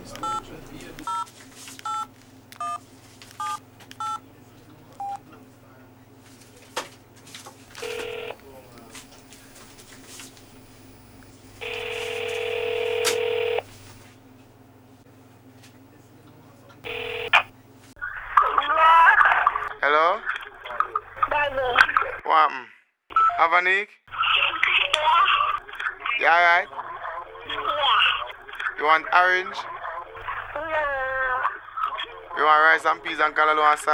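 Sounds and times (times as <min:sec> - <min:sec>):
low hum: 0:00.0 - 0:22.2, 0:24.1 - 0:33.9
phone keypad beeps: 0:00.2 - 0:01.3, 0:01.9 - 0:02.8, 0:03.4 - 0:04.2, 0:05.0 - 0:05.2, 0:07.7 - 0:14.0, 0:16.9 - 0:17.5
speech: 0:29.4 - 0:29.7, 0:32.8 - 0:33.9.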